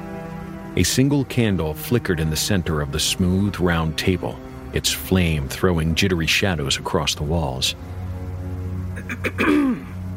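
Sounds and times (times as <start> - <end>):
steady low hum: 0.0 - 10.1
speech: 0.8 - 7.9, 9.2 - 9.8
woman clearing her throat: 9.0 - 9.9.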